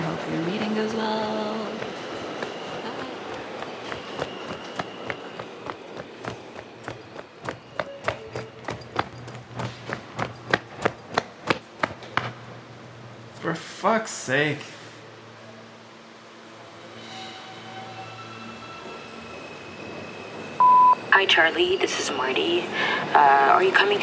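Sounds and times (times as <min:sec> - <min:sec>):
train clattering: 0:00.0 - 0:12.5
speech: 0:13.5 - 0:14.8, 0:21.2 - 0:24.0.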